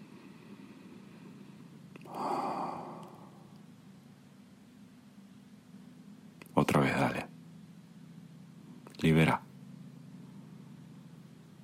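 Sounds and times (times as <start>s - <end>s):
deep sighing exhale during a breathing exercise: 0.0s - 3.6s
deep inhale during a breathing exercise: 0.0s - 3.7s
speech: 9.0s - 9.4s.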